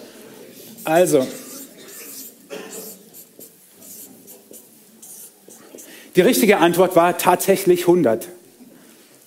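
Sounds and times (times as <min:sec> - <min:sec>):
pen or pencil strokes on paper: 0:00.7 - 0:06.0
speech: 0:00.8 - 0:01.4, 0:06.2 - 0:08.4.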